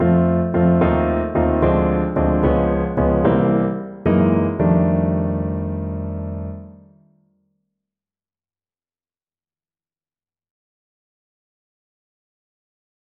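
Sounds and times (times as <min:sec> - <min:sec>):
blues endings: 0:00.5 - 0:06.8.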